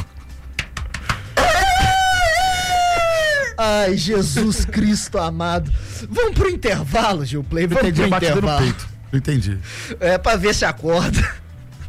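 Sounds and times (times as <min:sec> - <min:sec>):
person imitating a rooster crowing: 0:01.4 - 0:03.6
speech: 0:03.6 - 0:11.4.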